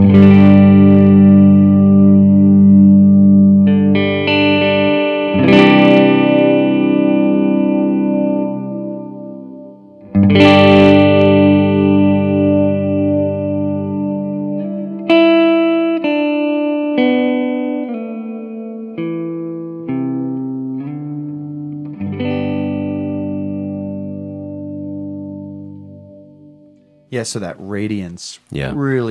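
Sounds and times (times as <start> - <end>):
electric guitar chords through a swell pedal with reverb: 0.0 - 27.1
speech: 27.2 - 29.1.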